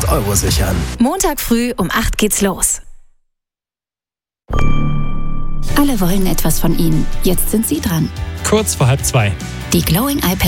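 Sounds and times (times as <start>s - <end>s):
speech: 0.1s - 2.8s, 5.7s - 10.4s
radio station gong chime: 4.5s - 6.9s.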